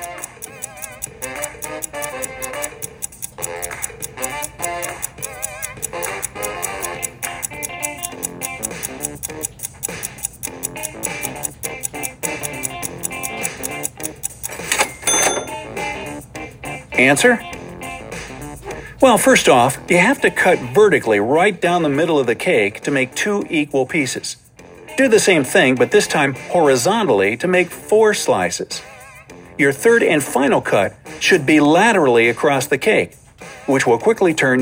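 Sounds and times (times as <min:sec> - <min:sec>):
ticking clock countdown timer effect: 0:00.0 - 0:16.2, 0:17.0 - 0:23.7
speech: 0:17.0 - 0:17.5, 0:19.0 - 0:24.4, 0:25.0 - 0:28.9, 0:29.6 - 0:34.6.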